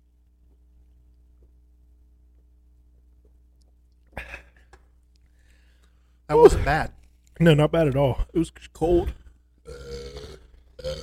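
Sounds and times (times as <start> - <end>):
speech: 6.3 - 9.8
long loud guttural burp: 9.6 - 11.0.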